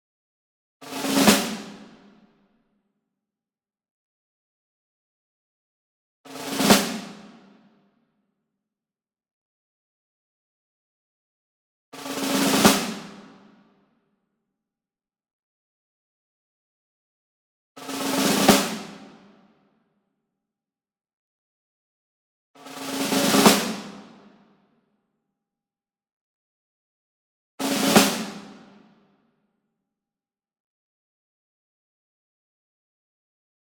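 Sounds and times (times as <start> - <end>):
high tension snare drum medium roll: 0.8 - 2.0, 6.4 - 7.4, 12.0 - 13.3, 17.9 - 19.2, 22.8 - 24.2, 27.6 - 28.7.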